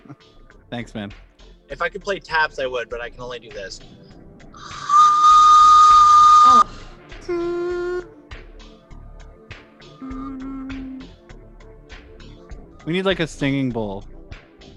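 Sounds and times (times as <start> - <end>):
speech: 0.7 - 4.0, 6.5 - 7.6, 12.9 - 14.1
person imitating a train whistle: 4.6 - 8.1.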